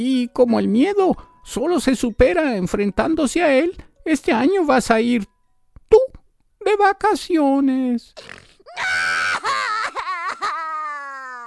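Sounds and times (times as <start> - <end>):
speech: 0.0 - 5.3, 5.9 - 6.1, 6.7 - 9.2
person screaming and crying: 8.7 - 11.4.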